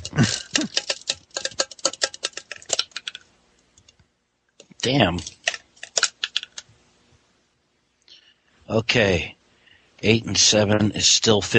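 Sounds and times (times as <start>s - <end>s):
dice rolled from a plain ordinary cup: 0.0s - 3.3s, 4.6s - 6.7s
speech: 4.8s - 5.4s, 8.7s - 9.4s, 10.0s - 11.5s.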